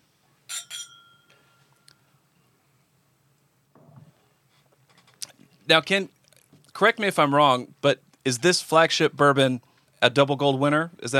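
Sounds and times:
bourbon glasses clinking in a toast: 0.5s - 1.9s
speech: 5.7s - 6.2s, 6.8s - 11.1s.

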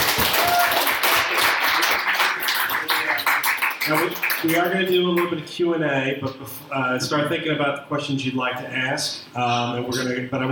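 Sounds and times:
room full of people applauding: 0.0s - 4.9s
speech: 3.9s - 10.4s.

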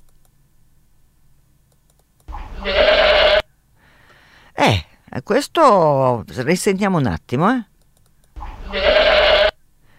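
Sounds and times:
goat bleating: 2.4s - 3.4s, 8.4s - 9.6s
speech: 4.7s - 7.7s.

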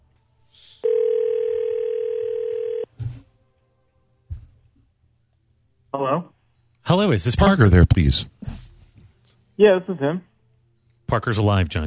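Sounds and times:
outgoing phone call electronic ringing tone: 0.8s - 2.9s
speech: 6.9s - 8.4s, 9.6s - 10.3s, 11.1s - 11.8s.

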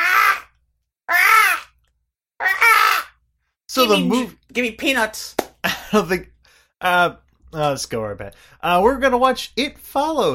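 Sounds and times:
harsh raspy crow-like caws: 0.0s - 1.8s, 2.4s - 3.2s
speech: 3.8s - 10.3s.

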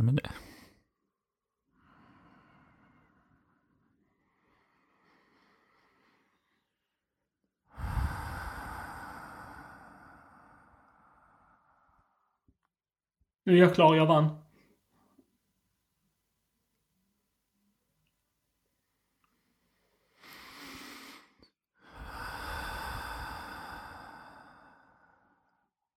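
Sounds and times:
deep deliberate breathing: 1.8s - 7.0s, 7.7s - 12.5s, 19.2s - 25.7s
speech: 13.5s - 14.4s.

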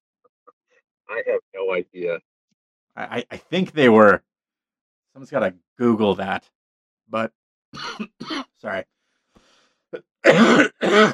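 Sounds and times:
speech: 1.1s - 2.3s, 3.0s - 4.3s, 5.2s - 9.0s, 9.9s - 11.1s
loud wet phlegmy cough: 7.8s - 8.5s, 10.3s - 11.1s.

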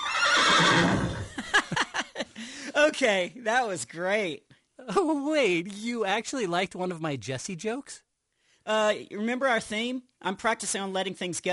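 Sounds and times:
horse neighing: 0.0s - 1.3s
laughter: 1.2s - 2.7s
speech: 2.9s - 8.1s, 8.7s - 11.5s.

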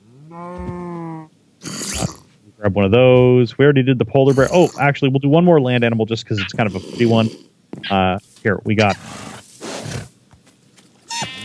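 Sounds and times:
cow mooing: 0.0s - 1.8s
speech: 0.3s - 0.7s, 2.6s - 9.2s.

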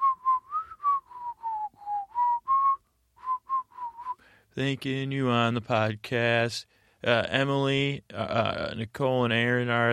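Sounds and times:
person whistling a simple tune while inhaling: 0.0s - 4.3s
speech: 4.6s - 9.9s.

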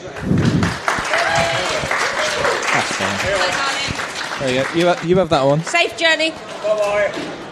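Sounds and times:
audience applause: 0.0s - 7.4s
audience voices cheering and calling out: 0.9s - 4.8s
speech: 4.4s - 7.4s.

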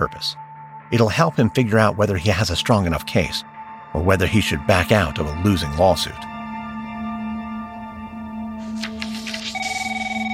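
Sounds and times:
speech: 0.0s - 6.3s
page flipping with rustling and clatter: 8.6s - 10.3s
telephone ringing with electronic trilling tone: 9.1s - 10.3s.

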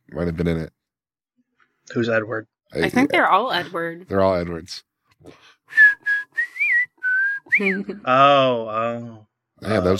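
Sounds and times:
speech: 0.1s - 0.8s, 1.9s - 5.9s, 7.6s - 9.9s
person whistling a bouncy cartoon theme tune: 5.7s - 8.0s.

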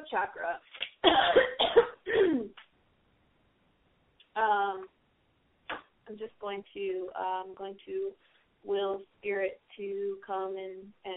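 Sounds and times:
speech: 0.1s - 2.5s, 4.4s - 5.0s, 6.1s - 11.1s
person clearing throat and coughing: 1.0s - 2.6s.

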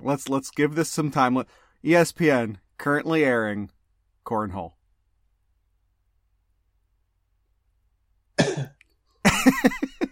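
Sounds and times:
speech: 0.0s - 4.8s, 9.4s - 9.8s
person coughing, sharp and raspy throaty coughs: 8.4s - 9.8s.

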